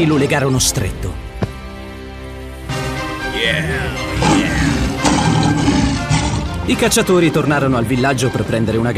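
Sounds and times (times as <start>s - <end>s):
speech: 0.0s - 1.2s, 3.4s - 4.6s, 6.7s - 8.9s
lion roaring: 3.8s - 6.7s.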